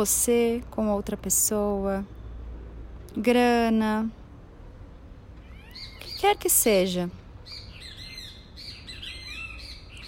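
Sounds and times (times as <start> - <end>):
speech: 0.0 - 2.2, 3.1 - 4.2, 6.2 - 7.2
many small birds chirping and tweeting in a tree: 5.4 - 10.0.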